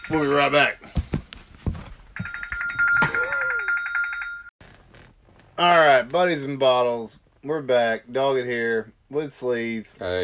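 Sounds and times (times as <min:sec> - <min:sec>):
speech: 0:00.1 - 0:01.0, 0:05.6 - 0:10.2
soft knocks and thumps: 0:00.8 - 0:02.8
telephone bell ringing: 0:02.2 - 0:04.5.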